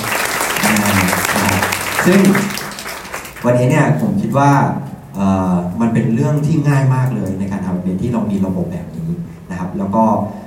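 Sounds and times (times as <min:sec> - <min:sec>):
crowd applauding: 0:00.0 - 0:03.5
speech: 0:02.0 - 0:02.6, 0:03.4 - 0:10.4.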